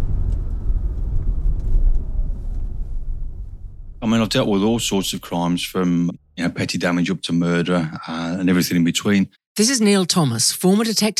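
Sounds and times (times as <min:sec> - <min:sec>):
Aston Martin DB5 car engine downshifting to first gear: 0:00.0 - 0:06.6
speech: 0:04.0 - 0:11.1.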